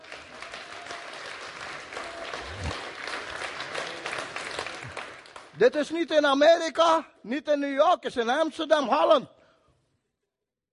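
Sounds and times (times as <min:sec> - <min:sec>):
large audience applauding enthusiastically: 0:00.0 - 0:05.6
speech: 0:05.6 - 0:09.4.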